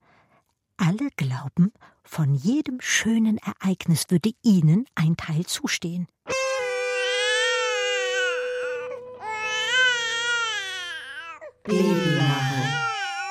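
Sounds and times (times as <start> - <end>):
speech: 0.9 - 6.4, 11.7 - 12.5
baby wailing: 6.4 - 13.2.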